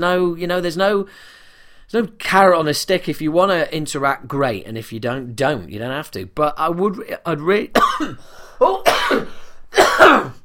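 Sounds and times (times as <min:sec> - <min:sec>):
speech: 0:00.0 - 0:10.4
person coughing: 0:07.8 - 0:10.4.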